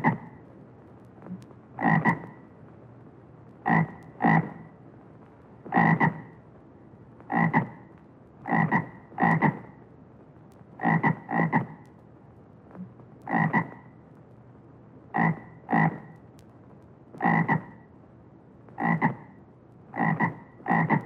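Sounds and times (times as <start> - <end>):
frog croaking in low rattling bursts: 0.0 - 0.4, 1.8 - 2.4, 3.6 - 4.7, 5.7 - 6.4, 7.3 - 9.8, 10.8 - 11.8, 13.2 - 13.9, 15.1 - 16.2, 17.2 - 17.9, 18.8 - 21.0
faint background hiss: 0.0 - 21.0.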